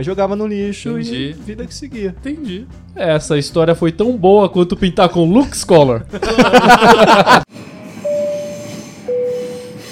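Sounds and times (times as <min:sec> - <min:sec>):
speech: 0:00.0 - 0:07.7
laughter: 0:06.1 - 0:07.5
train passing sound effect: 0:07.5 - 0:09.9.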